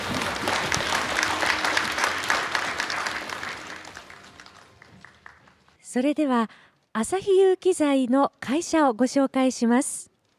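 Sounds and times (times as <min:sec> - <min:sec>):
audience applause welcoming the start of a company investor-relations seminar: 0:00.0 - 0:05.8
speech: 0:06.0 - 0:10.1.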